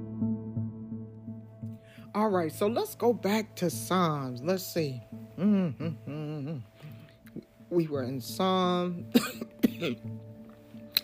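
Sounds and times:
speech: 2.2 - 6.0, 7.8 - 10.2
person coughing: 9.1 - 10.1.

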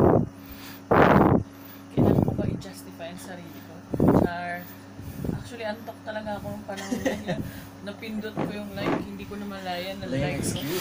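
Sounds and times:
electric fan running: 0.0 - 10.7
speech: 3.2 - 4.8, 5.4 - 10.7
person laughing: 6.7 - 7.5.

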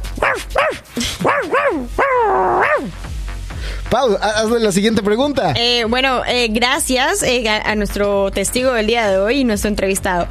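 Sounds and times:
dog barking: 0.2 - 3.0
speech: 3.9 - 10.2.

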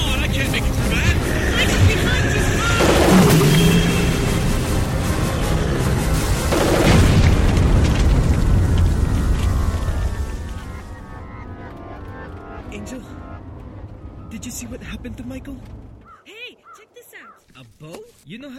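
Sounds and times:
roar of debris and hiss: 0.0 - 11.8
pressure tanks exploding: 2.8 - 10.7.

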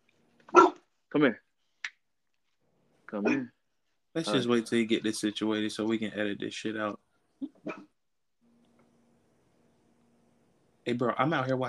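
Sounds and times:
dog barking: 0.5 - 0.8
speech: 1.1 - 1.5, 3.1 - 3.6, 4.2 - 7.8, 10.9 - 11.6.

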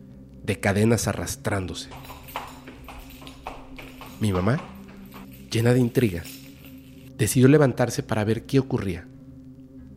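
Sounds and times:
low hum: 0.0 - 9.9
speech: 0.5 - 2.3, 4.2 - 4.7, 5.5 - 6.4, 7.2 - 9.1
horse hooves clip-clopping on a hard surface: 1.9 - 7.1.

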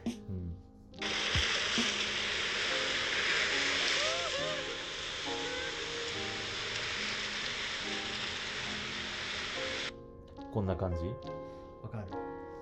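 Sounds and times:
ocean surf washing against a rocky shore: 1.0 - 9.9
speech: 10.6 - 12.2.

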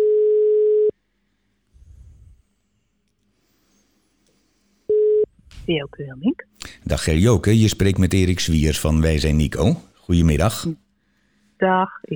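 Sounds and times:
telephone ringback tone in the Netherlands: 0.0 - 0.9
speech: 5.7 - 10.8, 11.6 - 12.1.

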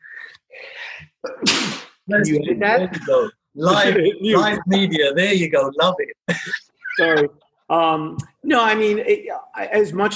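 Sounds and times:
person sneezing: 1.3 - 2.0
speech: 1.4 - 10.1.

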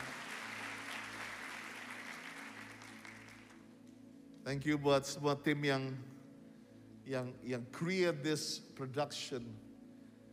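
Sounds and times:
large crowd applauding: 0.0 - 3.7
speech: 4.4 - 6.2, 7.1 - 9.7.

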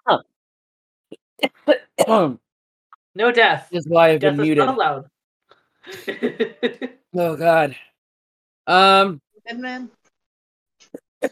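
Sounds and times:
speech: 0.1 - 0.3, 2.1 - 2.4, 3.2 - 5.1, 5.8 - 7.9, 8.7 - 10.0
fairly loud coughing fit: 1.7 - 2.4, 11.0 - 11.2
laughter: 5.9 - 7.1.

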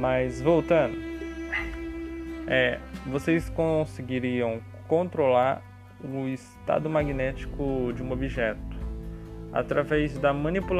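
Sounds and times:
speech: 0.0 - 1.7, 2.5 - 8.7, 9.5 - 10.7
dog barking: 1.5 - 1.8.

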